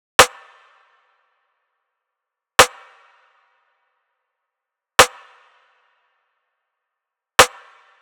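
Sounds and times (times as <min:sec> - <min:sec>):
RnB drum loop with rim hits: 0:00.2 - 0:00.6, 0:02.6 - 0:03.0, 0:05.0 - 0:05.5, 0:07.4 - 0:07.9.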